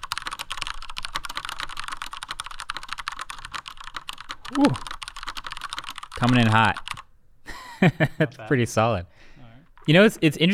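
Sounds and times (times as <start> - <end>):
rapid typing on a mechanical keyboard with smooth slightly mushy switches: 0.0 - 7.1
speech: 4.5 - 4.9, 6.2 - 6.9, 7.8 - 9.1, 9.8 - 10.5.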